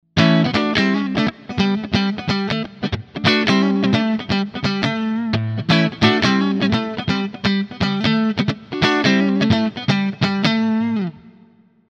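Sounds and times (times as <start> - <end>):
electric guitar with split neck pickup, clean: 0.1 - 11.8.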